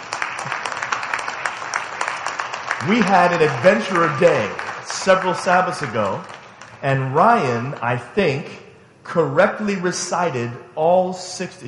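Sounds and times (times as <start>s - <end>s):
applause from a church congregation: 0.0s - 8.0s
speech: 2.8s - 11.6s.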